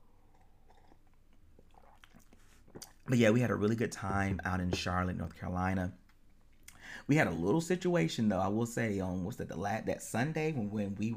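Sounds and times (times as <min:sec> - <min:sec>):
sipping and slurping tea: 0:00.0 - 0:03.4
speech: 0:03.1 - 0:06.0, 0:07.0 - 0:11.1.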